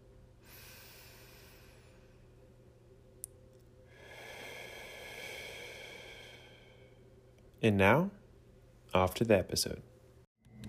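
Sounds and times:
slow quiet deep breath: 0:00.4 - 0:02.4, 0:03.9 - 0:07.3
speech: 0:07.6 - 0:08.2, 0:08.9 - 0:10.0.

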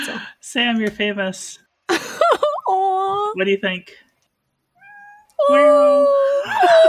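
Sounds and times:
speech: 0:00.1 - 0:02.1, 0:03.3 - 0:04.0, 0:05.4 - 0:06.8
cat meowing: 0:04.8 - 0:05.9.

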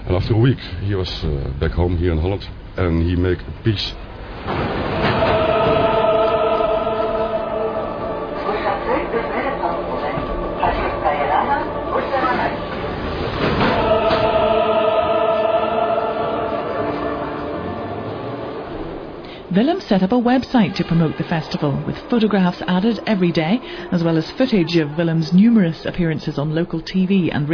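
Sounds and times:
metro train in Armenia rumbling: 0:00.0 - 0:27.5
speech: 0:00.1 - 0:04.9, 0:19.6 - 0:27.5.

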